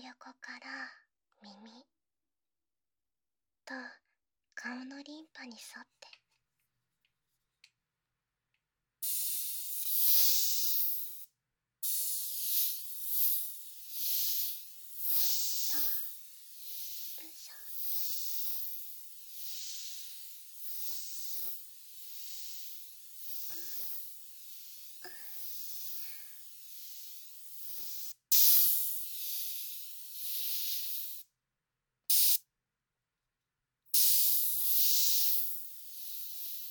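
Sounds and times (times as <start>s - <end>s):
speech: 0.1s - 2.0s, 3.7s - 4.0s, 4.6s - 6.2s
carbonated mist spray hissing onto the face: 9.0s - 31.2s, 32.1s - 32.4s, 33.9s - 36.6s
quiet breathy sounds: 9.0s - 31.3s, 34.0s - 36.6s.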